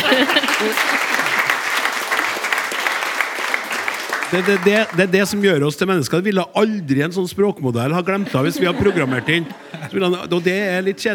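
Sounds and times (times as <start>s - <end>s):
laughter: 0.0s - 1.6s, 8.1s - 10.8s
audience applause: 0.0s - 5.4s
speech: 0.2s - 1.1s, 4.3s - 11.1s.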